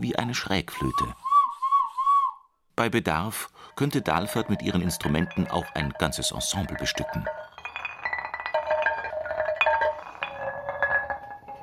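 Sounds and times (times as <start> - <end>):
speech: 0.0 - 1.2, 2.8 - 7.5
large heavy flint stones struck together: 3.8 - 11.6.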